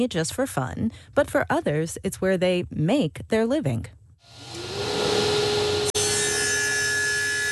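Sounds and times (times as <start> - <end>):
speech: 0.0 - 4.5
power saw cutting through wood in a workshop: 4.3 - 7.5.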